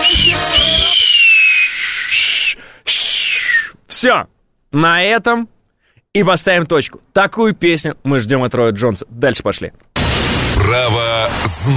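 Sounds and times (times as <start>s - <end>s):
person attempting to whistle: 0.0s - 3.8s
rushing breath noise: 1.6s - 3.7s, 5.7s - 6.1s
speech: 4.0s - 9.9s, 10.6s - 11.7s.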